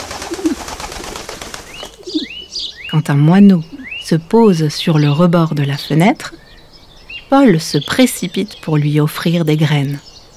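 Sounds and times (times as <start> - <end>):
pigeon cooing in a park: 0.0 - 3.0
outdoor noise in a park: 0.0 - 10.3
speech: 2.9 - 6.4, 7.3 - 10.1.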